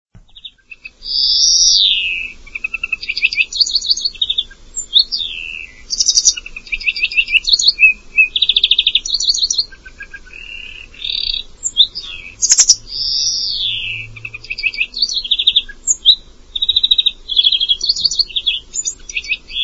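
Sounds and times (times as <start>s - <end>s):
bird song of rattling trills, slurred whistles and sharp chips: 0.2s - 19.6s
soft low background hum: 0.2s - 19.6s.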